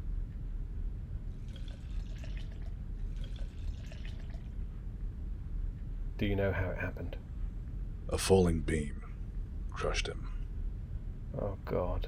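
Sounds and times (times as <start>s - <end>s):
steady low rumble: 0.0s - 12.0s
drink pouring into a glass: 1.4s - 4.5s
speech: 6.2s - 7.3s, 8.1s - 9.0s, 9.8s - 10.3s, 11.3s - 12.0s.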